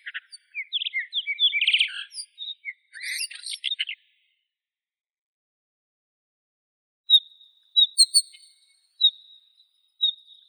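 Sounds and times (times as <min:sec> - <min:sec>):
Blue rock thrush Monticola solitarius song with chattering and whistled notes: 0:00.0 - 0:04.2, 0:07.1 - 0:10.4.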